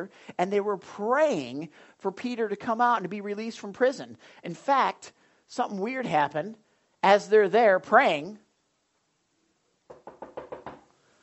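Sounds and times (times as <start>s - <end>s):
speech: 0.0s - 8.4s
knocking on a wooden door: 9.9s - 10.8s.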